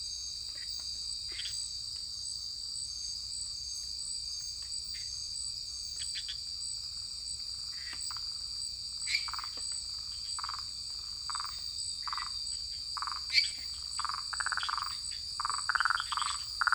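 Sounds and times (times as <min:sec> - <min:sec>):
constant high-pitched insect hum in French Guiana: 0:00.2 - 0:16.7
lesser treefrog and tree frogs giving short nasal croaks in French Guiana: 0:10.4 - 0:10.7, 0:11.3 - 0:12.4, 0:13.0 - 0:16.7.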